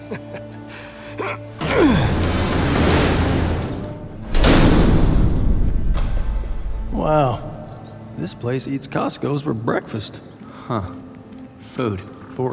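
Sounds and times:
speech: 0.1 - 0.4, 1.2 - 2.0, 8.2 - 11.1, 11.7 - 12.5
heavy door grinding open with a rushing whoosh: 1.6 - 8.2
low hum: 3.9 - 8.4
mechanical clicks of a door being unlocked: 4.2 - 8.3.

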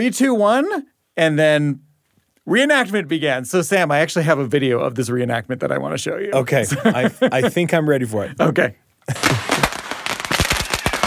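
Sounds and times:
speech: 0.0 - 9.6
laughter: 6.6 - 7.8, 9.1 - 9.8
fireworks popping: 9.0 - 11.0.

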